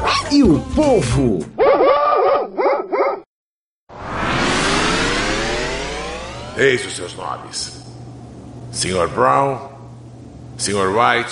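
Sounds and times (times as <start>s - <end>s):
speech: 0.3s - 1.6s, 6.6s - 8.0s, 8.7s - 9.7s, 10.6s - 11.3s
puppy barking and yipping: 1.6s - 3.2s
loud sustained rushing noise: 3.9s - 7.5s.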